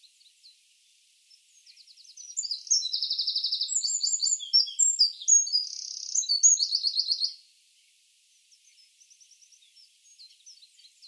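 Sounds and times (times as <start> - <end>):
Eurasian wren Troglodytes troglodytes singing a high-pitched run of notes: 1.6 - 7.4, 8.6 - 11.0.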